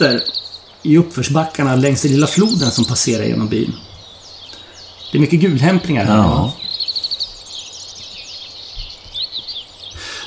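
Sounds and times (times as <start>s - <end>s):
speech: 0.0s - 3.9s, 5.1s - 6.9s
Italian sparrows chirping in a village along a small river: 0.0s - 10.2s.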